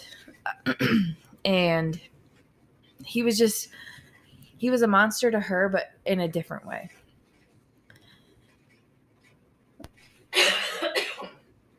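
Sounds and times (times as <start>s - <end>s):
person coughing harshly: 0.5s - 1.3s, 10.3s - 11.5s
speech: 0.7s - 2.1s, 3.1s - 3.9s, 4.6s - 7.0s.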